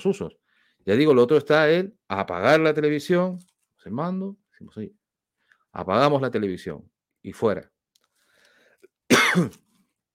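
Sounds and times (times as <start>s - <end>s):
speech: 0.0s - 5.0s, 5.8s - 7.7s, 9.3s - 9.6s
single rough throaty cough: 9.1s - 9.7s.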